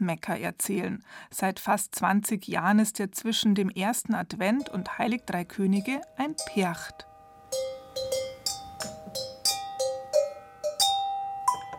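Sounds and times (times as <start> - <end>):
speech: 0.0 - 8.2
bell glockenspiel melody on wheeled cart: 4.6 - 11.7.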